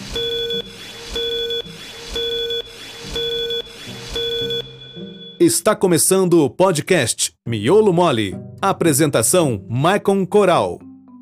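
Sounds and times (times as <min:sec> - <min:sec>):
five-second tone signal of short bright beeps: 0:00.1 - 0:05.4
speech: 0:05.4 - 0:10.9.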